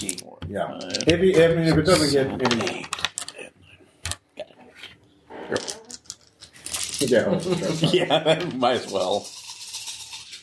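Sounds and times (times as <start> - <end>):
speech: 0.0 - 3.0, 5.5 - 5.8, 7.0 - 9.4
nine dice rattling and clattering across a hard surface: 2.4 - 3.4, 5.6 - 7.5, 8.6 - 10.4
laughter: 7.0 - 9.2.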